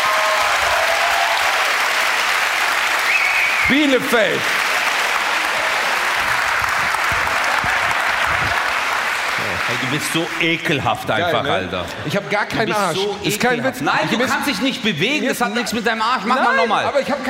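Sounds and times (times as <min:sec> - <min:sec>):
live audience clapping hands: 0:00.0 - 0:11.1
speech: 0:03.7 - 0:04.6, 0:09.7 - 0:17.2.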